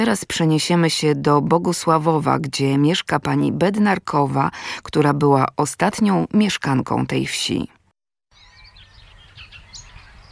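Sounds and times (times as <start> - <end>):
speech: 0.0 - 7.8
birds chirping and singing in a village: 8.3 - 10.3.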